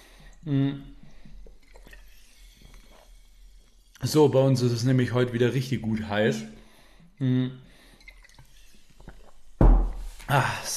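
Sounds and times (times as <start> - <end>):
person sipping and gulping water: 0.0 - 4.0, 7.2 - 10.2
small mouth and liquid sounds: 0.0 - 4.4, 7.2 - 10.0
speech: 0.4 - 0.9, 4.0 - 6.6, 7.2 - 7.7, 10.3 - 10.7.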